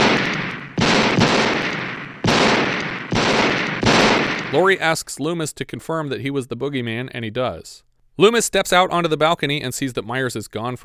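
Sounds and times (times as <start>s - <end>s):
loud gunshots fired at a man inside a house: 0.0s - 4.9s
speech: 4.5s - 10.8s.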